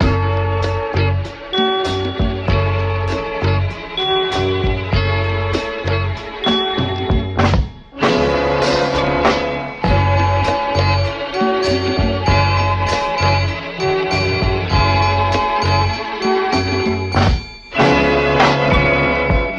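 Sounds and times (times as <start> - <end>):
funkdified horns loop: 0.0 - 19.5.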